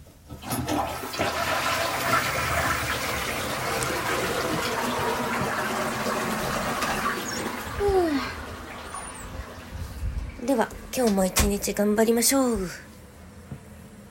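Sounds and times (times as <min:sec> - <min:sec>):
toilet flushing: 0:00.2 - 0:11.9
speech: 0:11.0 - 0:12.9.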